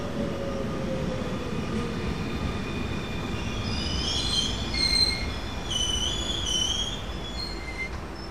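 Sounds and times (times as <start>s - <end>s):
commuter train rumbling at a station platform: 0.0s - 8.2s
high thin squeals from train wheels or brakes: 3.6s - 8.2s.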